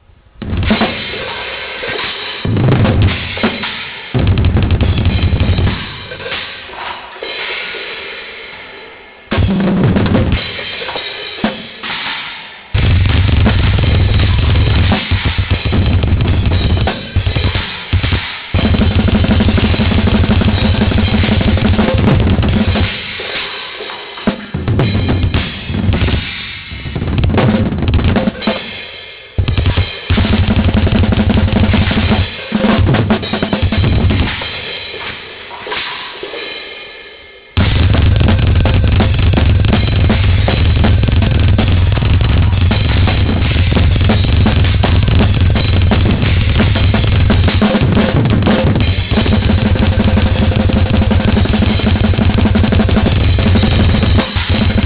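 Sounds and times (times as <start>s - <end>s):
drumming: 0.0s - 36.9s, 37.6s - 54.8s.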